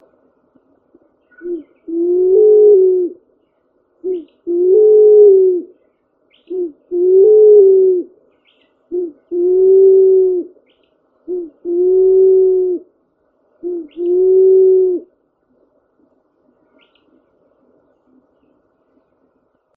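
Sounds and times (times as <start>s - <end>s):
Pink Pigeon song in Black River Gorge Mauritius: 1.2s - 12.9s, 13.6s - 15.1s.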